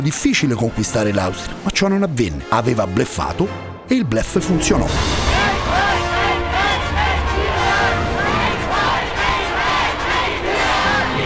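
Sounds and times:
speech: 0.0s - 6.0s
huge crowd cheering in Vienna: 5.2s - 11.2s.

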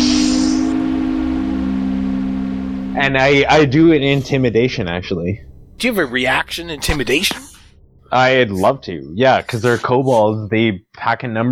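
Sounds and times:
steady low whistling hum: 0.0s - 9.8s
speech: 3.0s - 11.5s
voice imitating hissing steam: 9.4s - 10.4s.

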